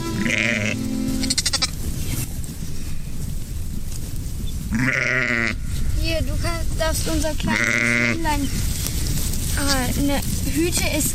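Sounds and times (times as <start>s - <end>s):
frightened lamb bleating anxiously: 0.0s - 1.8s, 4.7s - 5.6s, 7.5s - 8.2s
low rumbling outdoor background: 0.0s - 11.1s
speech: 6.9s - 8.7s, 9.6s - 11.1s.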